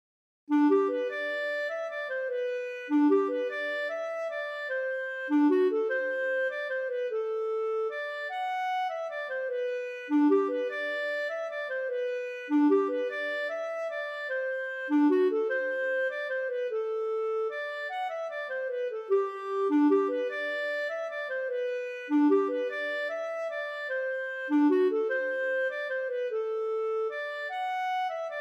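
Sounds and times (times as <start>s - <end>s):
waltz music: 0.5s - 28.3s.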